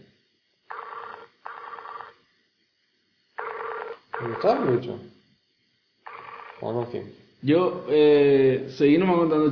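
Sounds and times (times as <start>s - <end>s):
Skype call ringing tone: 0.7s - 2.2s, 3.4s - 4.8s, 6.0s - 6.9s
speech: 4.2s - 5.2s, 6.6s - 9.5s.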